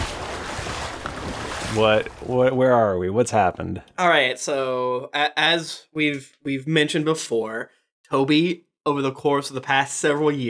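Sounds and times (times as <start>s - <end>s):
water splash: 0.0s - 2.6s
speech: 1.7s - 10.4s.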